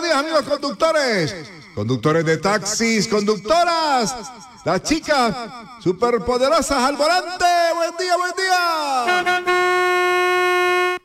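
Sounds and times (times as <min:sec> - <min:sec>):
speech: 0:00.1 - 0:10.2
school bus horn honking: 0:09.0 - 0:11.0.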